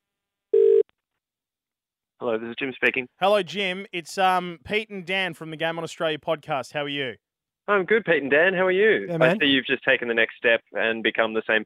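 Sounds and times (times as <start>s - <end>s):
steady electronic telephone ringback tone: 0.5s - 0.8s
speech: 2.2s - 11.6s.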